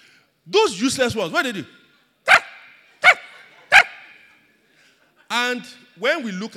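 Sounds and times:
speech: 0:00.5 - 0:01.8, 0:05.5 - 0:06.5
people imitating chihuahua yapping barks: 0:02.3 - 0:04.2.

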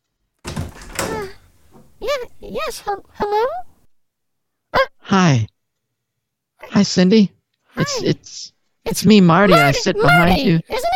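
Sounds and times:
front door latch clunk: 0:00.4 - 0:02.2
front door hinge creaking: 0:00.4 - 0:02.6
speech: 0:02.0 - 0:03.7, 0:04.7 - 0:05.5, 0:06.6 - 0:10.9.

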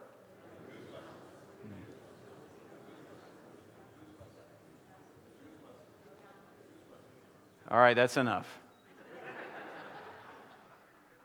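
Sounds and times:
laughter: 0:00.0 - 0:07.6, 0:08.9 - 0:11.2
crowd murmuring a repeated nonsense word: 0:00.0 - 0:11.2
speech: 0:07.7 - 0:08.6.

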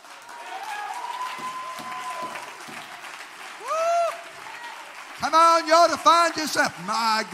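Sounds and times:
audience clapping: 0:00.0 - 0:07.3
person speaking loudly: 0:05.2 - 0:07.3
speech: 0:05.2 - 0:07.3.

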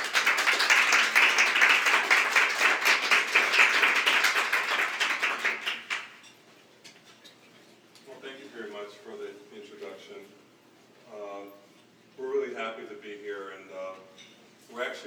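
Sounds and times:
audience applause welcoming speakers: 0:00.0 - 0:06.2.

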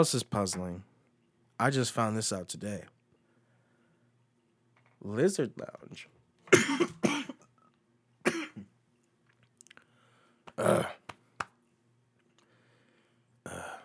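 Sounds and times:
speech: 0:00.0 - 0:00.9, 0:01.6 - 0:03.0, 0:05.0 - 0:07.3
harsh raspy smoker's cough: 0:06.5 - 0:07.5, 0:08.2 - 0:08.7.

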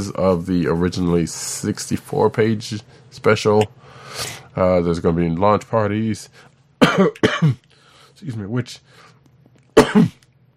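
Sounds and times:
speech: 0:00.0 - 0:07.6, 0:08.2 - 0:09.1, 0:09.9 - 0:10.2
person coughing: 0:06.8 - 0:07.7, 0:09.8 - 0:10.3.

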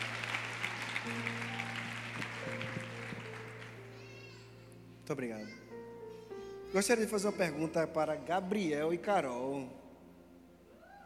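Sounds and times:
audience applause: 0:00.0 - 0:04.2
speech: 0:01.0 - 0:01.5, 0:05.1 - 0:05.6, 0:06.7 - 0:09.8.

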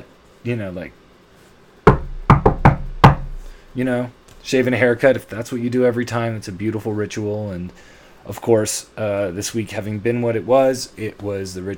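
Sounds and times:
speech: 0:00.4 - 0:01.0, 0:03.8 - 0:11.7
knocking on a door: 0:01.9 - 0:03.4.

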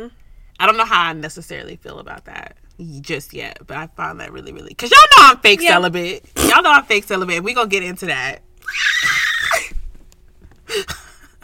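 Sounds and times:
speech: 0:00.0 - 0:09.0
high-pitched human screech: 0:08.6 - 0:09.6.

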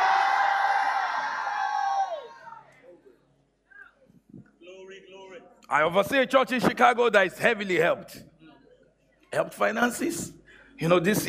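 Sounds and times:
large crowd screaming in unison: 0:00.0 - 0:02.7
speech: 0:05.7 - 0:08.3, 0:09.3 - 0:11.2.

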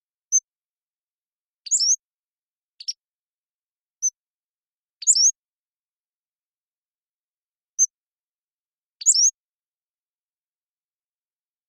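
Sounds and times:
Pacific-slope flycatcher Empidonax difficilis song: 0:01.6 - 0:03.2, 0:05.0 - 0:05.4, 0:08.9 - 0:09.5.

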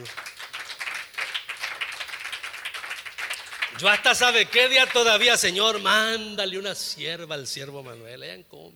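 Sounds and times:
speech: 0:00.0 - 0:00.2, 0:03.8 - 0:08.7
audience applause, many hands clapping: 0:00.0 - 0:06.0.

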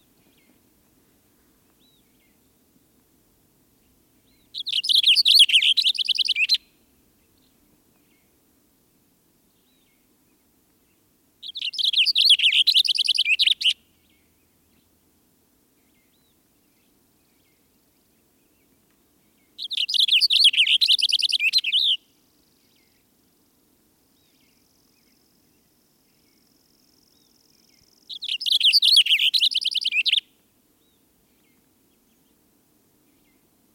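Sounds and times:
Cassin's Finch singing bright warbling song: 0:04.3 - 0:06.6, 0:11.4 - 0:13.8, 0:19.6 - 0:22.0, 0:27.7 - 0:30.2.

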